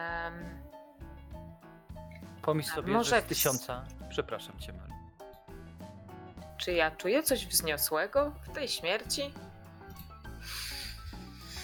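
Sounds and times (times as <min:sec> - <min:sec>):
faint tonal background: 0:00.0 - 0:11.6
speech: 0:02.4 - 0:05.0, 0:06.6 - 0:09.5
person sniffing deeply through the nose: 0:10.4 - 0:11.6.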